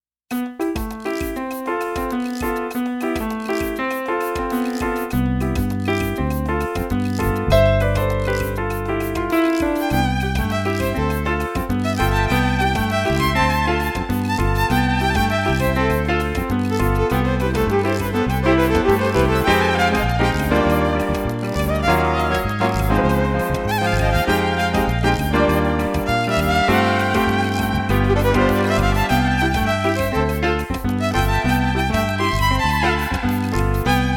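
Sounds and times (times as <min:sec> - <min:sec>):
drum rhythm loop: 0:00.3 - 0:34.1
keyboard with drum patch: 0:00.3 - 0:34.1
violin: 0:07.4 - 0:34.1.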